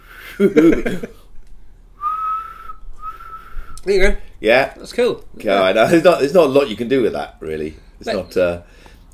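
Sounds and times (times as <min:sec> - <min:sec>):
laughter: 0:00.3 - 0:01.2
speech: 0:00.4 - 0:01.2, 0:03.9 - 0:08.9
person whistling: 0:02.0 - 0:03.8.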